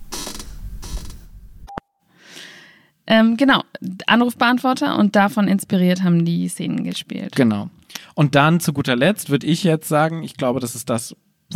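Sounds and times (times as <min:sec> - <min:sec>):
chair squeaking: 0:00.0 - 0:01.4
speech: 0:03.1 - 0:11.5.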